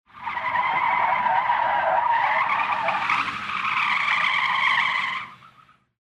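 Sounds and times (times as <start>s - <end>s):
tires screeching: 0.1s - 6.0s.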